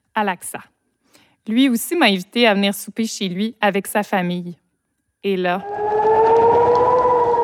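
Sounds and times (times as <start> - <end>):
speech: 0.2 - 0.8, 1.5 - 4.6, 5.2 - 5.8
air raid siren wailing: 5.6 - 7.4.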